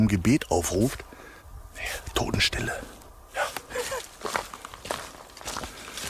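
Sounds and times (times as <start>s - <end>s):
speech: 0.0s - 1.1s, 1.8s - 3.6s
footsteps crunching walking down into a gorge: 3.4s - 6.0s.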